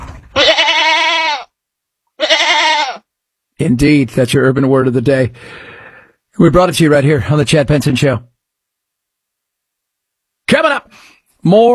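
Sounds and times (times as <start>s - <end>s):
goat bleating: 0.3s - 1.6s, 2.2s - 3.1s
speech: 3.6s - 5.7s, 6.4s - 8.3s, 10.5s - 11.7s.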